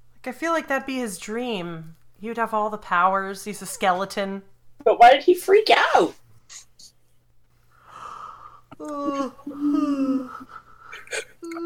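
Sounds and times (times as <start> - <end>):
speech: 0.2 - 6.7, 8.8 - 10.4
person yawning: 8.7 - 11.6.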